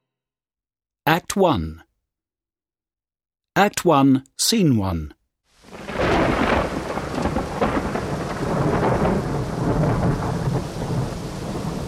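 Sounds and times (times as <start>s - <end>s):
speech: 1.1s - 1.8s, 3.6s - 5.2s
deep rolling thunder: 5.6s - 11.8s
steady heavy rain hissing: 5.6s - 11.8s.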